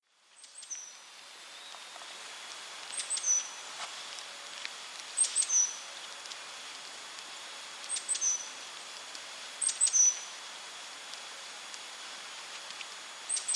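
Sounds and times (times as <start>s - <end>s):
quiet hiss: 0.0s - 13.5s
great tit Parus major calling with clicks and whistle: 2.9s - 3.6s, 5.2s - 5.8s, 7.9s - 8.5s, 9.6s - 10.3s.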